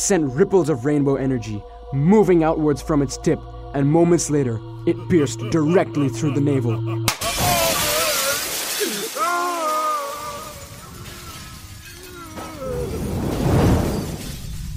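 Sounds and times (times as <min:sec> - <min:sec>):
speech: 0:00.0 - 0:07.1
laughter: 0:04.8 - 0:11.2
shattering crash: 0:07.1 - 0:14.7
rushing crumbling swell: 0:07.2 - 0:14.7.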